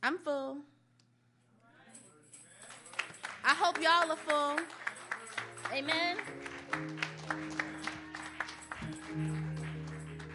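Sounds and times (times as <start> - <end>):
speech: 0.1 - 0.8, 3.5 - 4.8, 5.4 - 7.5
audience clapping in a steady rhythmic beat: 2.6 - 10.3
sustained organ or keyboard chords: 4.8 - 10.3.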